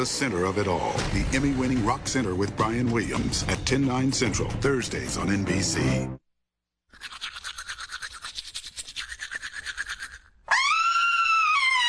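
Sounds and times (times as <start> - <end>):
speech: 0.0 - 6.2
scratchy toothbrush scrubbing: 6.9 - 10.3
woman screaming high-pitched after brushing her teeth: 10.5 - 11.8.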